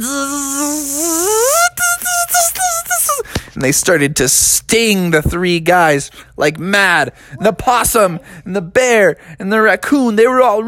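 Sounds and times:
voice imitating a swarm of bees buzzing: 0:00.0 - 0:03.2
speech: 0:03.6 - 0:10.6.

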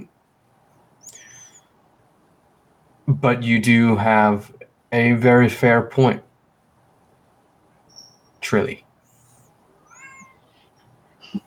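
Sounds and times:
speech: 0:03.1 - 0:06.3, 0:08.5 - 0:08.8
cat meowing: 0:09.7 - 0:10.9.

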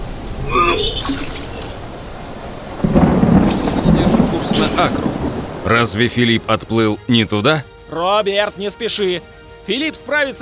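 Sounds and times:
water splashing in a storm at sea: 0:00.0 - 0:06.6
speech: 0:00.7 - 0:01.4, 0:04.8 - 0:05.1, 0:05.7 - 0:10.4.

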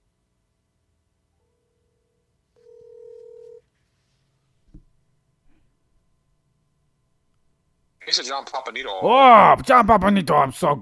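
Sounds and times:
steady electronic telephone tone: 0:01.4 - 0:03.6
speech: 0:08.1 - 0:10.8.

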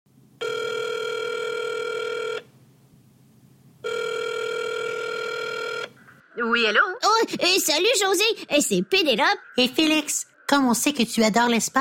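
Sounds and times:
telephone ringing as a call is placed: 0:00.4 - 0:02.5, 0:03.8 - 0:06.0
speech: 0:06.4 - 0:11.7.

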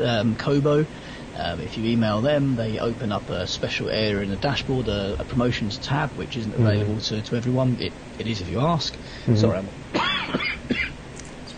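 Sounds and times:
speech: 0:00.0 - 0:10.8
raspy coughs from a lingering cold: 0:09.9 - 0:11.0.

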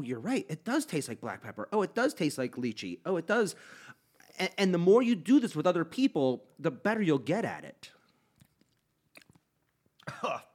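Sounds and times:
speech: 0:00.0 - 0:08.0, 0:10.1 - 0:10.5
faint mouth and gulping sounds: 0:08.3 - 0:10.2
person sputtering and coughing after swallowing a drink the wrong way: 0:10.0 - 0:10.5.

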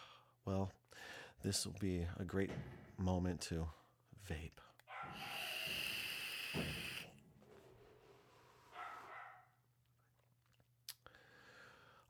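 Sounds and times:
speech: 0:00.4 - 0:05.4, 0:06.5 - 0:07.0
dog barking: 0:04.9 - 0:05.3, 0:08.7 - 0:09.6.

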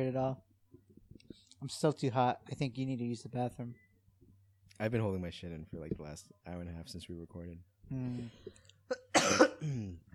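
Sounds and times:
speech: 0:00.0 - 0:00.5, 0:01.6 - 0:03.8, 0:04.8 - 0:10.1
person coughing: 0:08.9 - 0:10.1.

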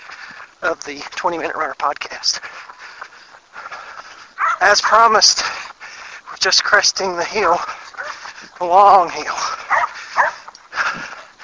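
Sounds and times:
speech: 0:00.6 - 0:02.6, 0:04.6 - 0:05.6, 0:06.4 - 0:07.8, 0:08.6 - 0:09.4
dog barking outdoors: 0:04.4 - 0:05.0, 0:09.7 - 0:10.4.

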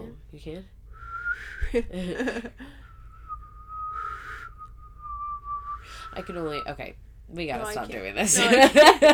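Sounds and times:
speech: 0:00.3 - 0:00.8, 0:01.4 - 0:02.9, 0:06.1 - 0:09.1
person whistling a thin steady note by breathing in: 0:00.9 - 0:01.8, 0:02.7 - 0:06.6
laughter: 0:01.9 - 0:02.7, 0:08.2 - 0:09.1.

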